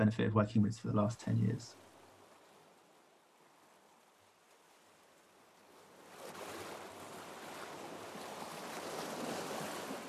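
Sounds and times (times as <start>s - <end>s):
speech: 0.0s - 1.8s
ocean waves washing against the shore: 0.9s - 10.0s.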